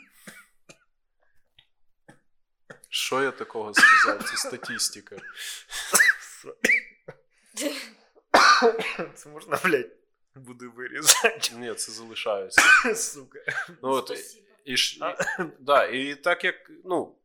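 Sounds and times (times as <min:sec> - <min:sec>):
speech: 0:03.1 - 0:06.6, 0:08.6 - 0:17.2
man coughing: 0:03.7 - 0:07.0, 0:08.4 - 0:09.8, 0:11.0 - 0:11.8, 0:12.6 - 0:14.2, 0:15.1 - 0:15.6.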